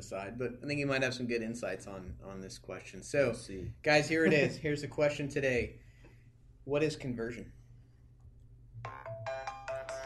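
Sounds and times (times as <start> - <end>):
speech: 0.0 - 5.9, 6.6 - 7.6
low hum: 0.0 - 10.0
mobile phone ringtone with bright repeating electronic melody: 8.9 - 10.0.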